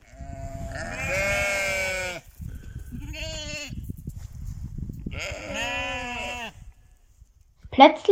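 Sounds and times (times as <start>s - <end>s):
sheep in a field bleating: 0.0s - 2.3s, 3.0s - 3.8s, 5.1s - 6.6s
speech: 7.8s - 8.1s.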